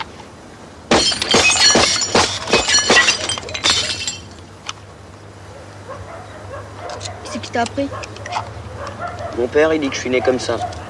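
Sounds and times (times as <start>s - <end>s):
faint glass bottle clinks: 0.9s - 4.4s
glass bottle shattering after being shot at during target practice: 0.9s - 4.5s
tinkling, scattering glass fragments: 0.9s - 4.5s
speech: 7.6s - 8.5s, 9.4s - 10.8s.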